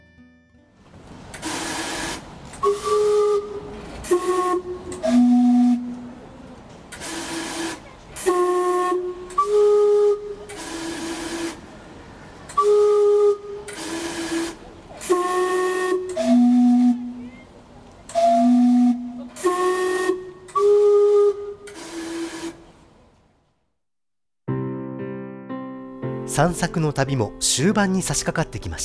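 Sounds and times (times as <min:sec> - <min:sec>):
steam clock whistle playing a slow tune of hissing notes: 0:01.4 - 0:06.2, 0:07.0 - 0:11.6, 0:12.5 - 0:17.4, 0:18.1 - 0:22.7
speech: 0:26.4 - 0:28.8.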